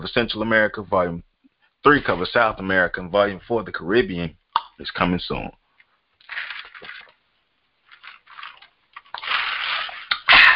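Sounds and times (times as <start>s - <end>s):
speech: 0.0s - 5.6s
slurping a drink: 8.0s - 10.2s.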